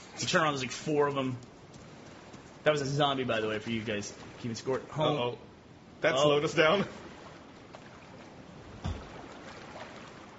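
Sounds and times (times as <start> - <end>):
ocean water washing while swimming: 0.0 - 5.1, 6.2 - 10.3
speech: 0.2 - 1.5, 2.6 - 7.0
heavier splash of water: 6.9 - 10.3.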